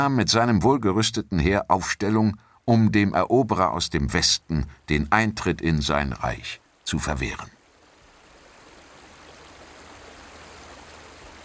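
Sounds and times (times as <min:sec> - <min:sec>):
speech: 0:00.0 - 0:07.6
rushing current of a torrential river: 0:06.1 - 0:11.4.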